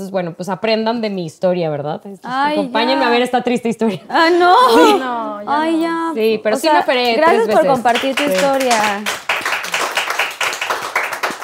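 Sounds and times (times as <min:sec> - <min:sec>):
speech: 0:00.0 - 0:09.2
small audience clapping: 0:07.0 - 0:11.4.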